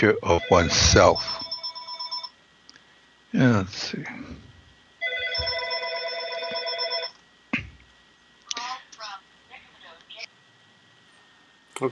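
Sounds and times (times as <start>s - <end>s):
speech: 0.0s - 1.4s, 3.3s - 4.4s
telephone ringing with electronic trill: 0.0s - 2.4s, 5.0s - 7.2s.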